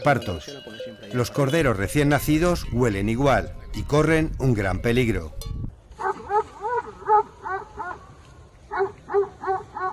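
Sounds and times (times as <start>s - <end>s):
speech: 0.0s - 5.6s
mastiff dogs barking defending a sheep flock against wild boars: 6.0s - 8.1s, 8.7s - 9.9s.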